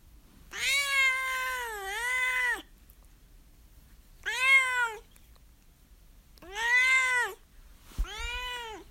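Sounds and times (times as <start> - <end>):
cat meowing: 0.5 - 2.7, 4.2 - 5.0, 6.4 - 7.4, 8.0 - 8.8.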